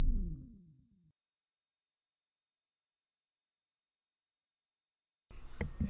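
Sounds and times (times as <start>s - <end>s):
low rumble: 0.0s - 0.6s
noise: 0.0s - 0.6s
thin high-pitched ringing tone: 0.0s - 1.5s.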